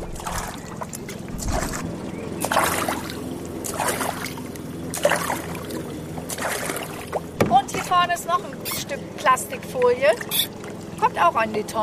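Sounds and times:
canoe paddle splashes on the Wakenitz river: 0.0 - 11.3
water swishing on the Wakenitz river: 0.0 - 11.8
speech: 8.2 - 10.5, 11.1 - 11.8.

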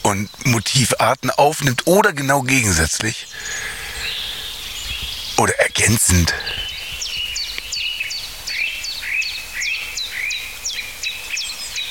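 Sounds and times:
faint hiss of ambience: 0.0 - 11.8
speech: 0.1 - 3.7, 5.4 - 6.7
blackbird sharp clipped tuck calls: 3.0 - 5.4, 6.1 - 7.8.

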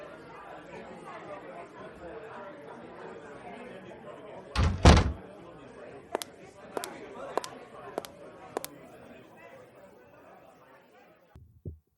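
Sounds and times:
murmur of chatter: 0.0 - 11.4
door banging open to let in a guest: 4.6 - 5.2.

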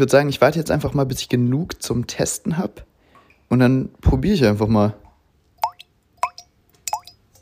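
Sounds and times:
speech: 0.0 - 2.9, 3.5 - 5.0
cloth-filtered dirty water dripping into a container: 5.0 - 7.4.

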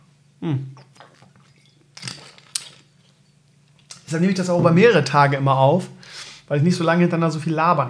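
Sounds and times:
speech: 0.4 - 1.4, 4.1 - 7.8
wet swallowing from the mouth and throat: 0.4 - 1.9.

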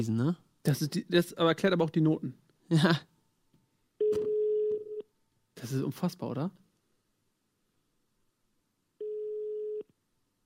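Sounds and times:
speech: 0.0 - 3.1, 5.6 - 6.6
telephone ringing tone from an unanswered call: 4.0 - 5.0, 9.0 - 9.9.

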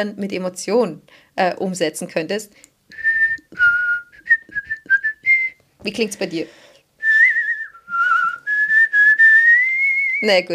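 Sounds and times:
speech: 0.0 - 3.7, 5.8 - 6.6, 10.2 - 10.5
person whistling a bouncy cartoon-style melody: 2.9 - 5.6, 7.0 - 10.3.

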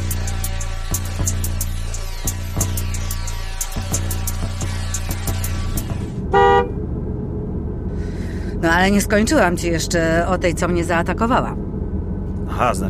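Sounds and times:
car engine rumbling: 0.0 - 12.8
car horn toot: 6.2 - 6.8
speech: 8.8 - 11.7, 12.6 - 12.8.

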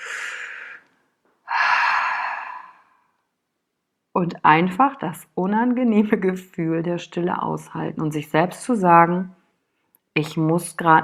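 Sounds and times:
deep breath drawn in through the mouth: 0.0 - 0.9, 1.5 - 3.1
speech: 4.2 - 9.4, 10.2 - 11.0.

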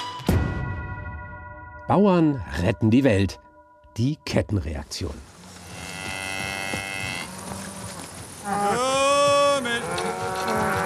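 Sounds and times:
speech: 1.9 - 5.3
soft buzzing outdoor background: 3.0 - 10.8
farmer calling his cows across an open pasture: 8.4 - 10.8.

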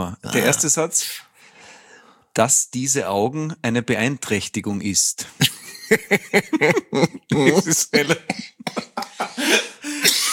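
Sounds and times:
speech: 0.0 - 1.3, 2.4 - 10.2
person laughing: 5.4 - 10.3
person coughing: 6.8 - 10.3
gasping breaths: 8.4 - 10.1.

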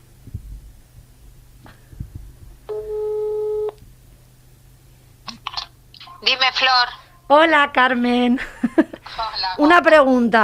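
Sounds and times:
low rumble: 0.0 - 10.4
telephone ringback tone while placing a phone call: 2.7 - 3.8
speech: 6.5 - 10.4.

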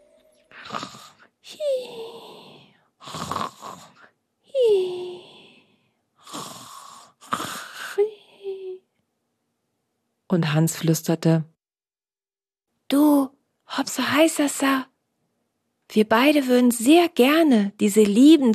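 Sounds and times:
voice imitating a marmot's soft snoring: 0.5 - 8.7
speech: 10.3 - 11.5, 13.9 - 14.9, 15.9 - 18.5.

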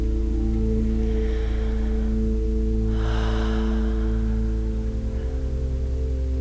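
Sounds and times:
slow deep breathing during a guided healing meditation: 0.0 - 6.3
steady humming drone of ambient music: 0.0 - 6.3.

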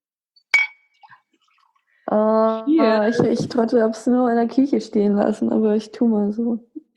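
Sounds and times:
glasses clinking in a toast: 0.4 - 1.2
speech: 2.1 - 6.9.

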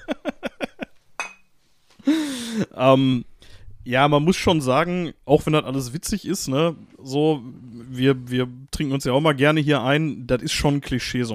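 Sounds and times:
glasses clinking during a toast: 1.2 - 1.5
speech: 2.6 - 11.3.

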